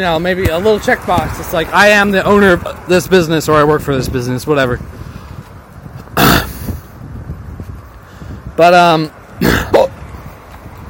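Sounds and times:
speech: 0.0s - 5.1s, 8.6s - 9.9s
man hiccuping: 6.2s - 6.7s, 9.4s - 10.0s.

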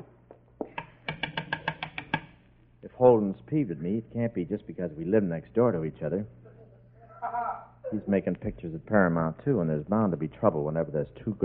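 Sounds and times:
knocking on a door: 1.0s - 2.3s
speech: 3.0s - 6.4s, 7.9s - 11.4s.

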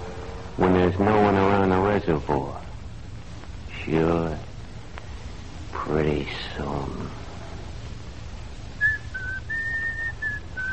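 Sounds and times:
low rumble: 0.0s - 10.7s
speech: 0.6s - 2.6s, 3.9s - 4.5s, 5.9s - 7.2s
person whistling a slow steady tune: 8.8s - 10.7s.

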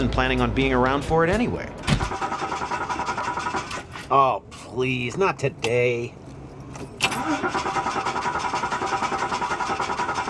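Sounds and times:
speech: 0.0s - 2.2s, 4.1s - 6.2s, 6.8s - 8.0s
car engine cranking, failing to start: 1.3s - 4.6s, 5.6s - 10.2s.

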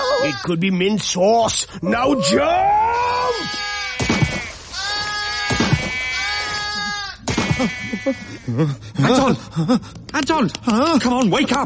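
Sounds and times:
speech: 0.2s - 4.3s, 7.6s - 11.6s
sheep bleating: 3.3s - 8.6s.

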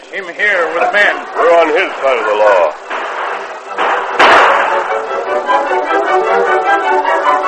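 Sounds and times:
steady dense noisy commotion: 0.0s - 7.4s
speech: 0.1s - 2.9s
single sharp gunshot outside: 2.9s - 5.0s.

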